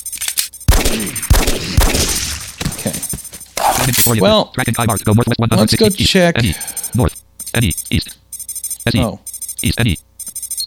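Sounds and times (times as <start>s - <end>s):
Glock pistol gunfire in a video game: 0.7s - 2.8s
speech: 4.0s - 8.2s, 8.8s - 10.0s.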